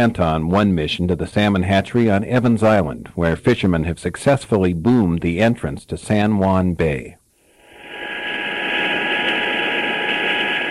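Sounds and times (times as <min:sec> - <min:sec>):
speech: 0:00.0 - 0:07.2
cargo helicopter turbine engine roar with high whine: 0:07.6 - 0:10.6.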